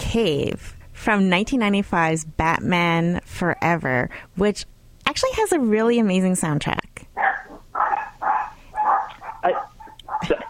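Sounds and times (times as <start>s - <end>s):
speech: 0.1s - 7.4s
dogs barking: 7.2s - 10.4s.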